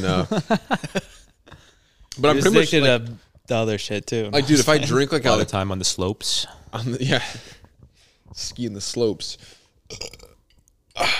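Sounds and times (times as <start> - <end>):
speech: 0.0 - 1.1, 2.2 - 7.6, 8.3 - 10.2, 11.0 - 11.1
raspy burp: 9.9 - 11.1.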